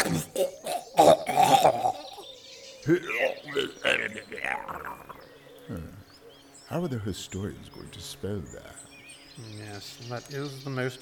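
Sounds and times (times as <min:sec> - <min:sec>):
voice imitating a phlegmy gurgling cough with a death rattle: 0:00.0 - 0:02.2, 0:02.9 - 0:05.2
speech: 0:02.9 - 0:03.2, 0:06.7 - 0:08.8, 0:09.4 - 0:10.9.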